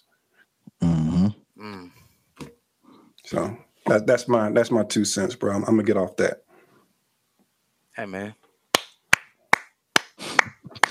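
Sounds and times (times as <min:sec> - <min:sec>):
speech: 0:03.3 - 0:06.4, 0:08.0 - 0:08.4
slow hand claps: 0:08.7 - 0:10.8.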